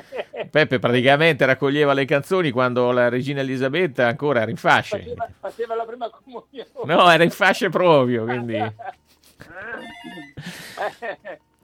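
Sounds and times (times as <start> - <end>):
laughter: 0.0 - 0.6, 4.8 - 11.6
speech: 0.5 - 11.5
telephone bell ringing: 9.6 - 10.8.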